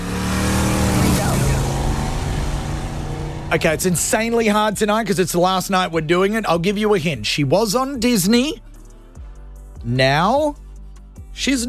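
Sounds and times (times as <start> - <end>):
car engine roaring as it speeds past: 0.0 - 5.9
speech: 3.5 - 8.7, 9.8 - 10.6, 11.4 - 11.6.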